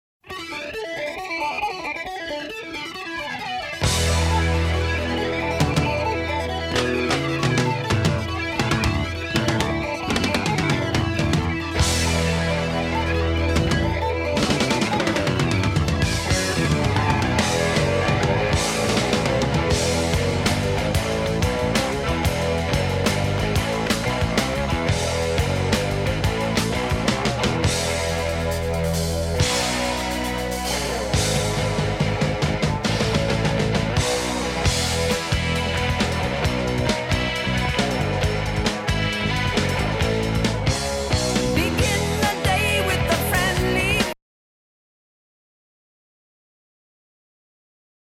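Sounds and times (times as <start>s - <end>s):
1968 electric guitar: 0.2s - 44.2s.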